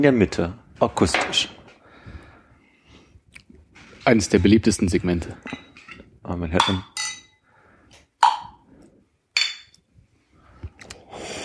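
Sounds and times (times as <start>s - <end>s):
speech: 0.0s - 1.6s, 4.0s - 5.6s, 6.2s - 6.9s
glasses of red Zweigelt wine clinking in a toast: 6.6s - 7.4s, 9.4s - 9.8s.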